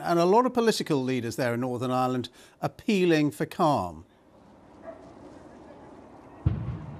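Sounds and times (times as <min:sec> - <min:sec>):
speech: 0:00.1 - 0:04.1
dog bark: 0:04.8 - 0:06.0
explosion from a burning bus: 0:06.4 - 0:06.9.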